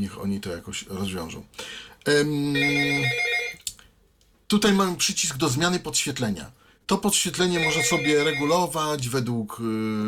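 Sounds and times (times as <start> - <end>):
speech: 0.0 - 3.3, 4.5 - 10.0
telephone ringing with a sustained electronic tone: 2.5 - 3.6, 7.5 - 8.7.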